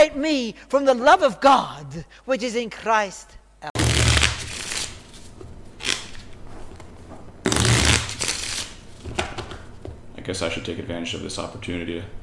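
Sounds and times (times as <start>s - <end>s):
speech: 0.0s - 3.8s, 10.3s - 12.2s
deck of playing cards being shuffled: 3.8s - 9.6s.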